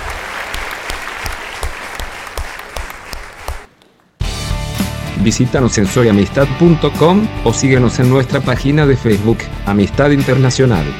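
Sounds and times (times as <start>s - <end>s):
audience applauding loudly: 0.0s - 4.2s
speech: 5.2s - 10.9s.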